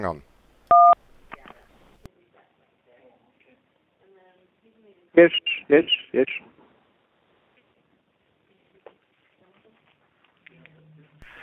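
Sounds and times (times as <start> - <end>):
speech: 0.0 - 0.3, 5.2 - 6.5
phone speakerphone keypad tone: 0.7 - 1.0.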